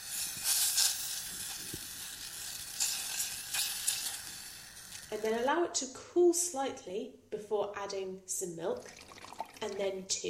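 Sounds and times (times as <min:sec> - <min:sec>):
butter melting and sizzling in a pan for baking: 0:00.0 - 0:05.5
speech: 0:05.1 - 0:09.0, 0:09.6 - 0:10.2.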